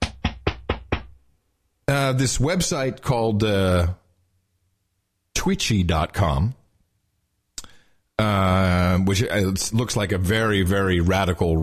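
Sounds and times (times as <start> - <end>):
knocking on a door: 0.0 - 1.2
speech: 2.0 - 4.0, 5.4 - 6.6, 8.2 - 11.6.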